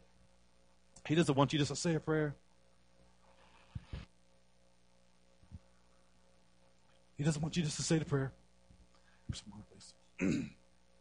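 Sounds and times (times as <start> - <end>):
speech: 1.1 - 2.4, 7.2 - 8.4, 9.3 - 10.6
person clearing throat: 10.2 - 10.6.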